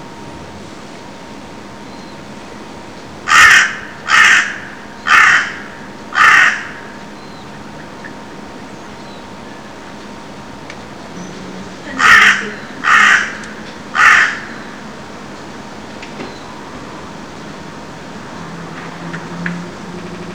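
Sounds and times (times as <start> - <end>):
crow cawing: 3.2 - 7.1, 11.1 - 15.7.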